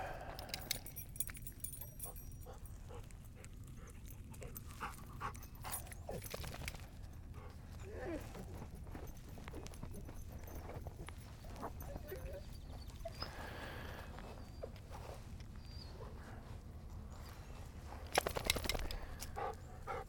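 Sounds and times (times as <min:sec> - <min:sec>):
steady outdoor noise: 0:00.0 - 0:20.0
keys jangling while locking a car: 0:00.3 - 0:12.9.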